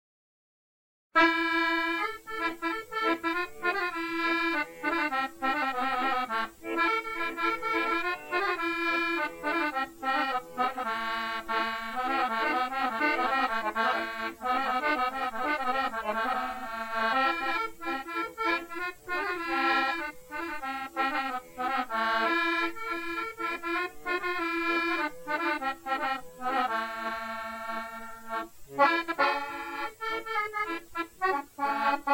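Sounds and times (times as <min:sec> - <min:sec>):
Italian accordionist playing in key A: 0:01.2 - 0:32.1.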